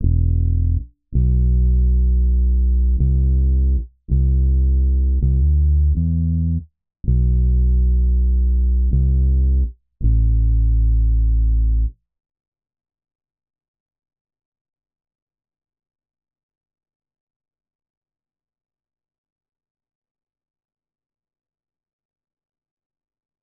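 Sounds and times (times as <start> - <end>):
bass line in E minor at 162 BPM: 0.0 - 12.0.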